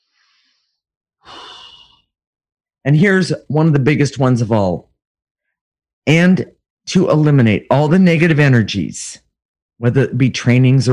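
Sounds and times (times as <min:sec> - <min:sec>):
person taking a breath: 0:00.0 - 0:02.1
speech: 0:02.8 - 0:04.9, 0:06.1 - 0:09.2, 0:09.8 - 0:10.9.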